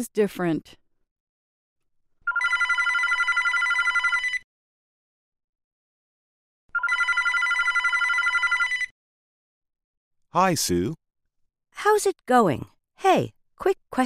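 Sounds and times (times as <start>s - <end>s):
speech: 0.0s - 0.8s, 10.3s - 11.0s, 11.8s - 14.0s
telephone ringing in electronic trilling bursts: 2.2s - 4.5s, 6.7s - 9.0s.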